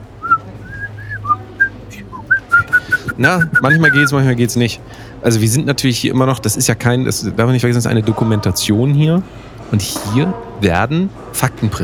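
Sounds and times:
person whistling a tune into a microphone pop filter: 0.2 - 4.1
speech: 3.2 - 11.8.

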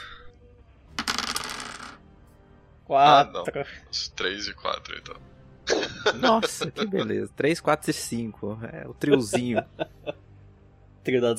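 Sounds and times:
twenty-sided die clattering across a tabletop: 1.0 - 2.0
speech: 2.9 - 10.2, 11.0 - 11.3
laughter: 5.7 - 7.2, 9.0 - 10.2.

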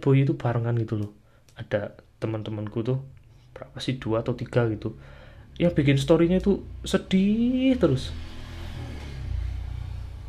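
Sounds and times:
speech: 0.0 - 8.3
motorcycle engine passing by: 6.3 - 10.2.

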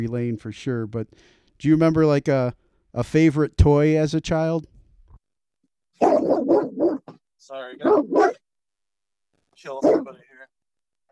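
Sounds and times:
speech: 0.0 - 4.7, 7.4 - 8.4, 9.6 - 10.6
dog barking inside a car at a shop: 6.0 - 7.2, 7.8 - 8.4, 9.7 - 10.2.

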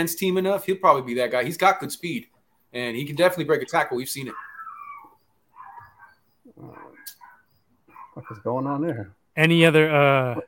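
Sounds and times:
speech: 0.0 - 4.4, 8.2 - 10.4
dogs barking in the background: 4.2 - 8.7.

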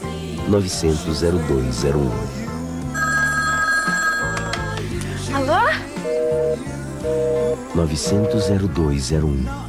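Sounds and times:
commercial music with low rhythmic notes: 0.0 - 9.6
speech: 0.5 - 2.4, 6.5 - 9.6
telephone ringing with an electronic tone: 3.0 - 4.8, 6.0 - 8.6.

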